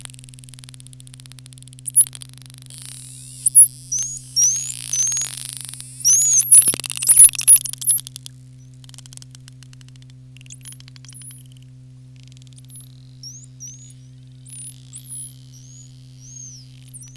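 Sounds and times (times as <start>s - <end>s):
pygmy killer whale clicking bursts: 0.0s - 17.1s
steady low mechanical hum: 0.0s - 17.1s
pygmy killer whale whistles: 2.8s - 8.0s, 12.5s - 17.1s.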